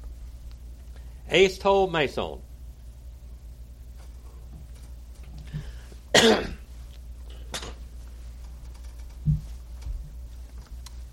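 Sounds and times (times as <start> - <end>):
speech: 1.3 - 2.5
coughing from an ear infection affecting the throat: 6.1 - 6.7.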